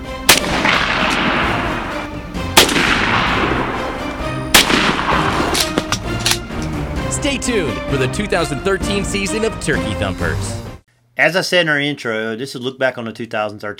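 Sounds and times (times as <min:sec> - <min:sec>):
loud shotgun blasts from turkey hunting outdoors: 0:00.2 - 0:06.4
rolling echo of shotgun blasts: 0:00.2 - 0:06.6
speech: 0:07.3 - 0:10.6, 0:11.2 - 0:13.7.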